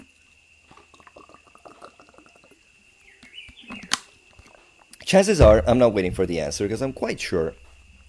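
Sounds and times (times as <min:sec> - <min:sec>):
person slurping and swallowing water: 0:00.7 - 0:02.6
speech: 0:05.1 - 0:07.6.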